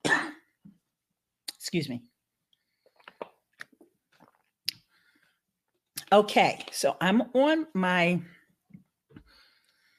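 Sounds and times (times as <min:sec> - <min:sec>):
speech: 0:01.6 - 0:02.1, 0:06.1 - 0:08.4
sipping and swallowing water: 0:02.5 - 0:05.0.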